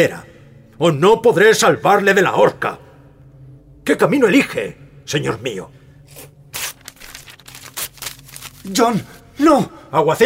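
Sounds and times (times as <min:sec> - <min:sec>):
speech: 0:00.0 - 0:02.8, 0:03.9 - 0:06.3, 0:08.7 - 0:10.2
paper confession document being ripped up: 0:06.1 - 0:08.9.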